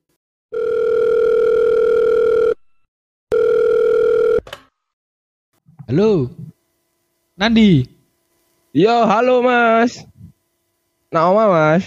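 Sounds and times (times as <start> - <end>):
steady electronic phone ringback tone while placing a call: 0.5 - 2.6, 3.3 - 4.4
speech: 5.9 - 6.5, 7.4 - 8.0, 8.7 - 10.1, 11.1 - 11.8.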